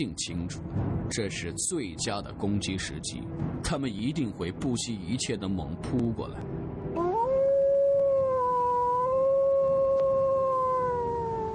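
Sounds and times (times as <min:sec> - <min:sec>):
speech: 0:00.0 - 0:06.8
wolf howling from high ground: 0:07.0 - 0:11.5.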